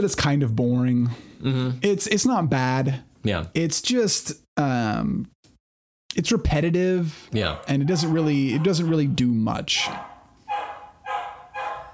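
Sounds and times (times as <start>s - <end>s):
speech: 0.0s - 5.4s, 6.1s - 10.1s
dog barking: 7.4s - 11.9s.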